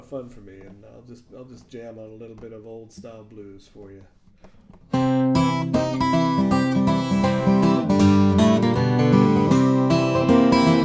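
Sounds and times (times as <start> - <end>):
steel string flattop 12 string guitar: 4.9 - 10.8.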